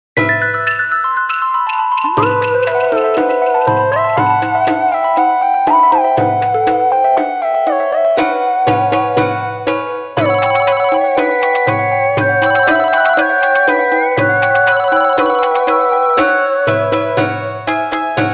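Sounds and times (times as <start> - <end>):
Nokia Japanese phone ringtone: 0.3 - 18.2.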